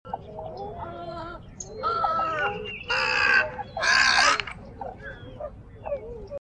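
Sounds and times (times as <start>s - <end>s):
great blue heron calling in Belize: 0.1s - 6.2s
birdsong in Belize: 0.1s - 6.4s.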